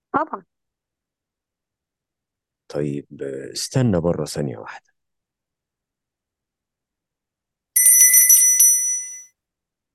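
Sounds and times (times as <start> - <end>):
speech: 0.2 - 0.6, 2.7 - 4.9
bell rung in a stage play to summon a servant: 7.8 - 9.3.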